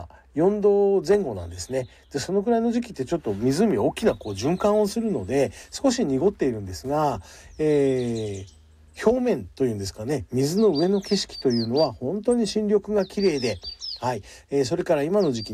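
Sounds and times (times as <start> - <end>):
birds chirping and singing by a lake: 0.0 - 15.5
speech: 0.0 - 15.5.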